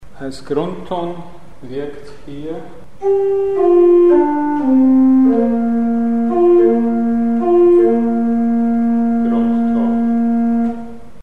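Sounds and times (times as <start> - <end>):
pentatonic base tone: 3.0 - 11.2.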